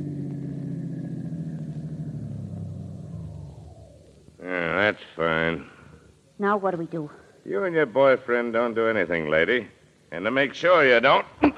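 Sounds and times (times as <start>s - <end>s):
car engine rumbling at low speed rolling into a garage: 0.0s - 6.2s
speech: 4.9s - 5.7s, 6.4s - 11.4s.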